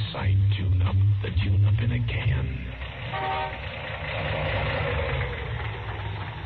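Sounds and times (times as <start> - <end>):
speech: 0.1 - 3.7
misfiring car engine idling roughly: 2.1 - 6.4.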